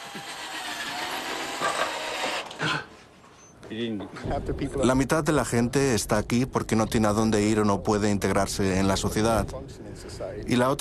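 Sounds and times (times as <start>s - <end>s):
mechanical whirring and ratcheting while screwing a metal plate into place: 0.0s - 2.6s
grinding bursts: 0.0s - 2.7s
speech: 3.7s - 10.7s.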